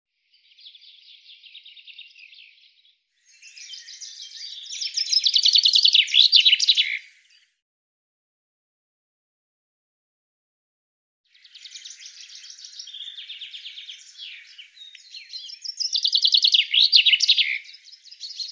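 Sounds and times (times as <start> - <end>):
common chaffinch song with rapid high trill ending in a flourish: 0.2 - 7.6, 11.3 - 18.5.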